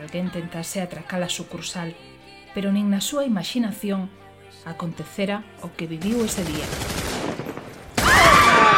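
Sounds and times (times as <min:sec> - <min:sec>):
speech: 0:00.0 - 0:07.0
machine gun burst fired into the air inside a Stockholm bank: 0:06.1 - 0:08.6.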